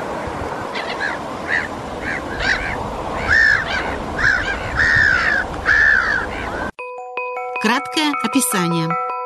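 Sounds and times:
pectoral sandpiper calling with short, arched, reedy notes: 0:00.7 - 0:06.6
speech: 0:07.6 - 0:09.0.

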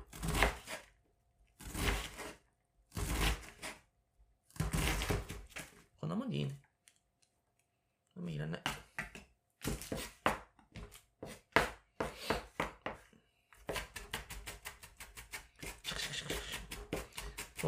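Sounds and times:
knife mincing an onion on a cutting board: 0:00.0 - 0:00.9, 0:01.6 - 0:03.8, 0:04.5 - 0:05.7, 0:08.6 - 0:13.0, 0:13.6 - 0:17.6
person speaking: 0:06.0 - 0:06.7, 0:08.1 - 0:08.9, 0:15.6 - 0:17.6.

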